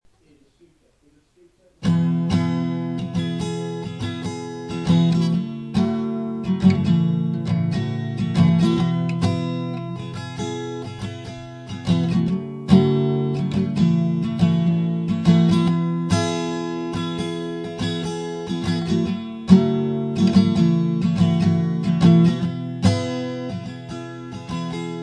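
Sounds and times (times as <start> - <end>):
acoustic guitar: 1.4 - 25.0.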